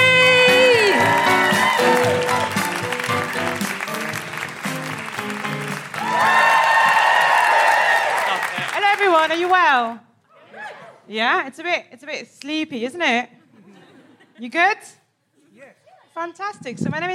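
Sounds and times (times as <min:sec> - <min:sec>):
live comedy audience whooping and cheering: 0:00.0 - 0:08.8
live comedy audience clapping: 0:00.1 - 0:10.0
speech: 0:09.2 - 0:10.1, 0:11.1 - 0:13.4, 0:14.4 - 0:15.0, 0:16.2 - 0:17.1.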